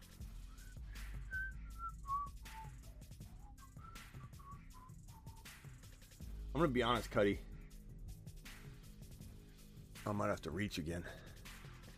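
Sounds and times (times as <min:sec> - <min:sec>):
person whistling a tune: 0:00.4 - 0:05.7
speech: 0:06.6 - 0:07.5, 0:10.1 - 0:11.3.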